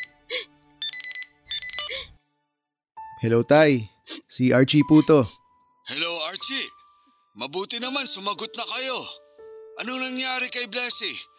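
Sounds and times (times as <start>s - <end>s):
mobile phone ringtone playing a bright electronic melody: 0.8s - 2.1s
speech: 3.2s - 6.1s, 7.5s - 9.2s, 9.8s - 11.3s.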